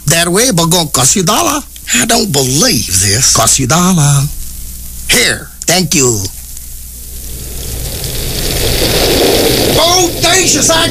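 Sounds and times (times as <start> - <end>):
speech: 0.2 - 4.4, 5.1 - 6.4, 8.6 - 10.8
low rumble: 6.8 - 10.8
steady rain pouring: 7.0 - 10.8.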